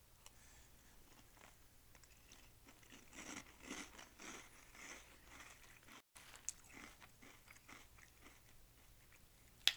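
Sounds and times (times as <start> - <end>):
person chewing crisp breakfast cereal: 1.0 - 9.7.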